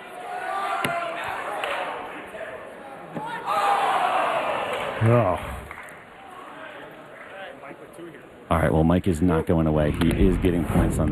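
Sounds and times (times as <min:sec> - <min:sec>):
arena crowd roaring: 0:00.0 - 0:07.0
speech: 0:05.0 - 0:05.5, 0:08.5 - 0:11.1.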